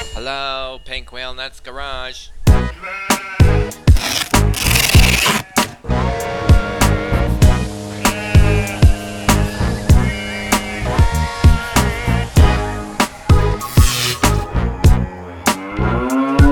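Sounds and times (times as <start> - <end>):
speech: 0.3 - 3.9
cow mooing: 2.7 - 5.7, 6.4 - 16.5.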